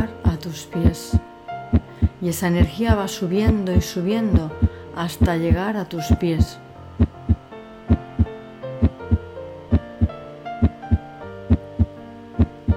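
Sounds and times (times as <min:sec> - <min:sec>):
speech: 0:00.0 - 0:01.3, 0:02.2 - 0:06.6
sustained warm musical drone: 0:00.0 - 0:12.7
steady heartbeat thumping in paired lub-dub beats: 0:01.8 - 0:02.8, 0:07.0 - 0:12.7.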